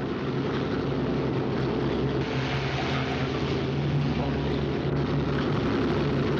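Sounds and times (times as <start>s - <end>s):
airplane engines droning as the plane leaves: 0.0s - 6.3s.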